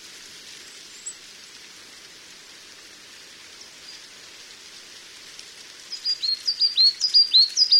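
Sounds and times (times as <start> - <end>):
hissing background noise: 0.0 - 7.7
coal tit singing sharp high see-sawing notes: 5.9 - 7.7.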